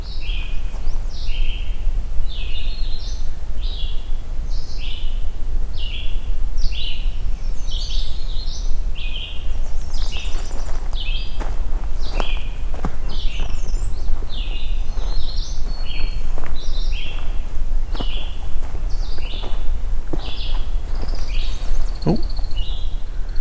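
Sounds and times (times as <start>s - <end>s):
constant low outdoor rumble: 0.0s - 23.3s
pine warbler singing a musical trill: 0.0s - 23.3s
American woodcock wings whistling while taking off: 9.3s - 23.3s
sharp crunching steps: 9.8s - 23.1s.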